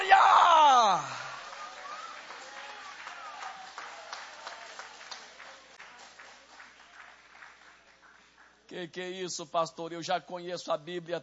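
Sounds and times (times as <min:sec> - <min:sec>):
church audience clapping with raised hands: 0:00.0 - 0:08.7
speech: 0:08.8 - 0:11.2.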